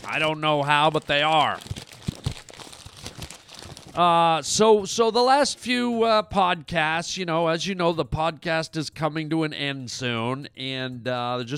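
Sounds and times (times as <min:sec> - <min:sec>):
paper letters crinkling and rustling as a mailbag is opened: 0:00.0 - 0:04.2
speech: 0:00.1 - 0:01.7, 0:04.0 - 0:11.5.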